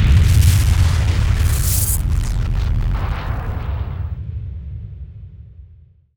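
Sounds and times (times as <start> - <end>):
explosion shockwave: 0.0 - 4.6.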